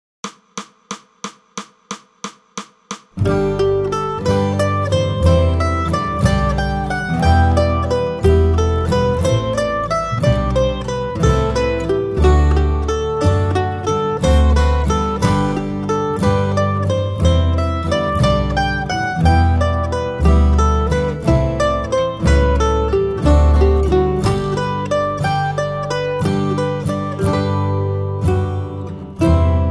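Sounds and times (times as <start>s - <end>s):
mandolin piece: 3.2s - 29.6s.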